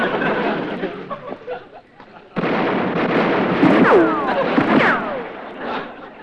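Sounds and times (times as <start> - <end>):
laughter: 0.0 - 2.4, 3.9 - 6.2
gunfire: 2.4 - 6.2
people shouting: 3.8 - 5.3.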